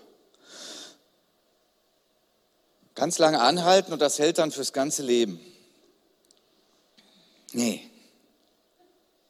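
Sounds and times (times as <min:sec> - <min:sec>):
sharp deep breath inhaled to demonstrate breathing: 0:00.4 - 0:01.0
speech: 0:03.0 - 0:05.5, 0:07.5 - 0:07.9.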